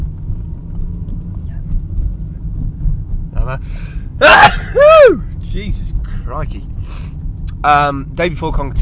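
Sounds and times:
steady low engine rumble: 0.0 - 8.8
speech: 3.5 - 8.8
short sharp intake of breath: 3.6 - 4.1, 6.8 - 7.2.

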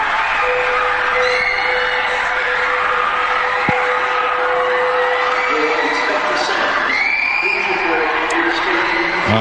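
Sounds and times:
large crowd screaming and shouting in panic in an arena lobby after an IED detonation: 0.0 - 9.3
steady electronic tone: 0.1 - 6.2.

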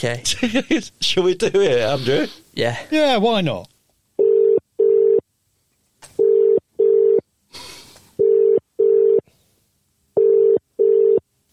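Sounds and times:
speech: 0.0 - 3.7
phone ringing tone in double-pulse pattern: 4.2 - 5.2, 6.2 - 7.2, 8.2 - 9.2, 10.2 - 11.2.

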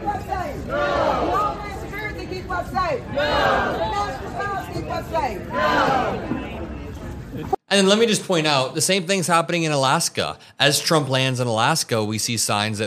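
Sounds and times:
crowd babble: 0.0 - 8.8
large protest crowd chanting in unison outdoors: 0.6 - 1.6, 3.0 - 4.4, 5.4 - 6.7
speech: 2.7 - 4.2, 4.8 - 6.4, 7.3 - 12.8.

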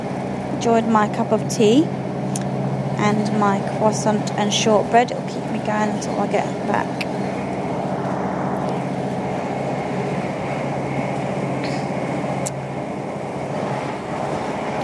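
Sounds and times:
old rickety train rumbling and rattling, heard from inside the carriage: 0.0 - 14.8
speech: 0.6 - 2.0, 3.0 - 7.0.

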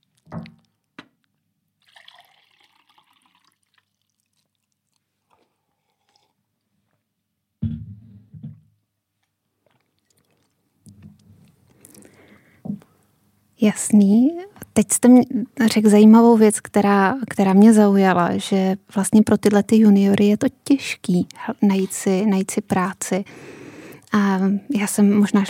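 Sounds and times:
person sipping a drink: 1.8 - 6.5, 9.6 - 12.5
speech: 13.6 - 25.4.

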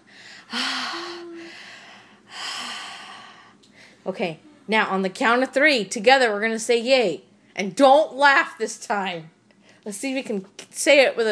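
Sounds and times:
person taking deep breaths: 0.0 - 4.0
faint voiced hum: 0.0 - 5.2
speech: 4.0 - 11.3.

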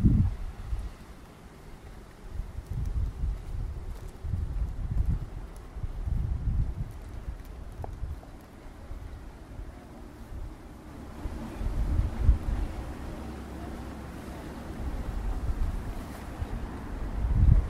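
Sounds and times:
wind noise: 0.0 - 1.2, 1.8 - 17.6
boat engine rumble passing on a river: 0.0 - 17.6
water lapping: 7.5 - 17.3.

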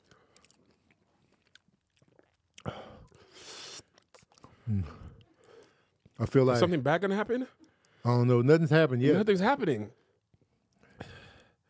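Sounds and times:
chewing with soft crunchy bites and mouth noises: 0.0 - 6.2
speech: 4.7 - 5.0, 6.2 - 10.0.

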